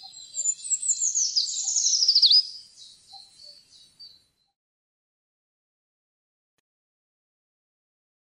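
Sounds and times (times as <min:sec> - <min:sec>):
Eurasian treecreeper singing: 0:00.0 - 0:04.6
faint high twittering: 0:00.0 - 0:04.6.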